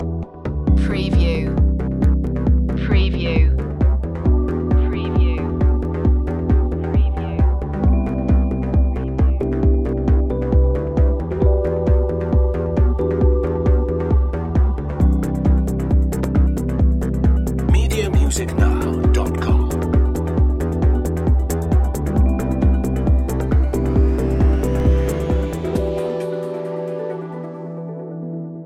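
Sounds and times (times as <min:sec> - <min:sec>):
ground pulsation loop: 0:00.6 - 0:26.2.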